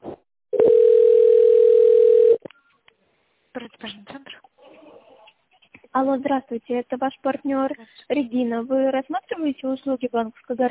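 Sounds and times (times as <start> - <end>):
steady telephone tone while a call is transferred to an operator: 0.6 - 2.4
speech: 6.0 - 10.6.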